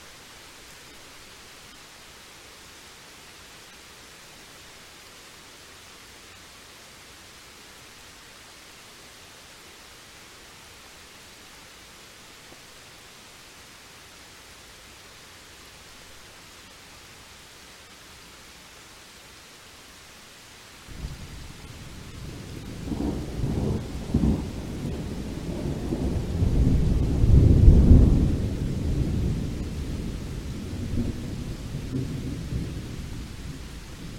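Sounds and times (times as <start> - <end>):
faint steady hiss of weather: 0.0 - 34.1
low deep rumble of thunder: 20.9 - 34.1.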